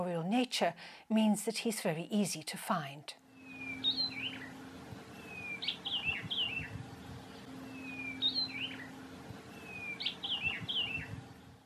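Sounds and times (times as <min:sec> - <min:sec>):
speech: 0:00.0 - 0:03.2
steady low hum: 0:00.0 - 0:11.6
white-browed orange-throated songbird singing: 0:03.4 - 0:11.6.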